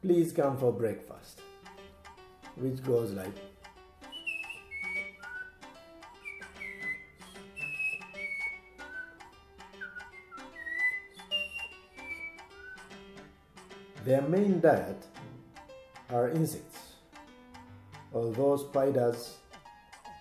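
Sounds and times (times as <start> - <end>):
speech: 0.0 - 1.5, 2.6 - 3.5, 14.0 - 15.1, 16.1 - 16.8, 18.1 - 19.4
brown-throated wattle-eye six-note call: 4.1 - 12.9.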